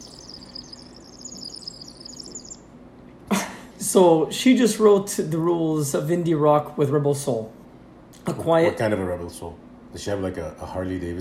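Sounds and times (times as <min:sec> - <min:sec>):
bird chirping in the studio: 0:00.0 - 0:02.8
low hum: 0:00.0 - 0:11.1
speech: 0:03.9 - 0:07.6, 0:08.2 - 0:11.1.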